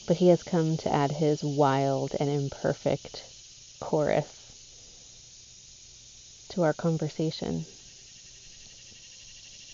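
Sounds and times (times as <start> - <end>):
cicada buzzing: 0.0 - 9.7
speech: 0.1 - 4.4, 6.5 - 7.8.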